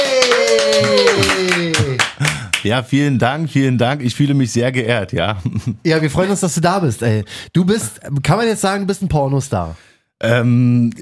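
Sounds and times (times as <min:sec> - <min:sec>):
applause greeting a guest: 0:00.0 - 0:02.7
speech: 0:02.7 - 0:11.0.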